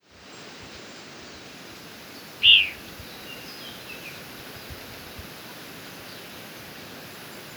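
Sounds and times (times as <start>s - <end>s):
low steady background noise: 0.0s - 7.5s
Black-crested Warbler Myiothlypis nigrocristata chip call: 2.4s - 2.8s.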